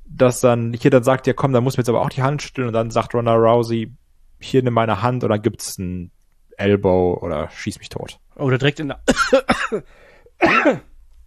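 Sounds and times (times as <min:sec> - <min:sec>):
speech: 0:00.2 - 0:10.9
single short harsh cough: 0:09.1 - 0:10.9.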